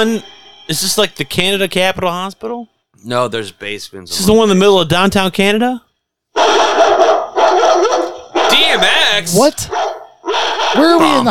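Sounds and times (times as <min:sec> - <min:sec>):
speech: 0:00.0 - 0:06.6, 0:08.7 - 0:09.8, 0:10.7 - 0:11.3
dogs barking and yelping in kennels in a video game: 0:06.3 - 0:11.3.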